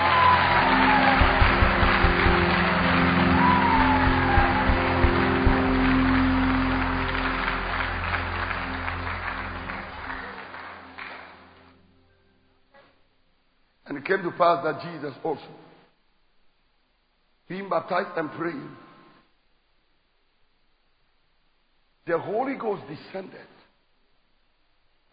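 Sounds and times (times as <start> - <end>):
shouts and whoops from church audience: 0.0 - 6.5
large church audience clapping during a sermon: 0.0 - 11.8
speech: 14.1 - 15.7, 17.6 - 18.8, 22.1 - 23.5.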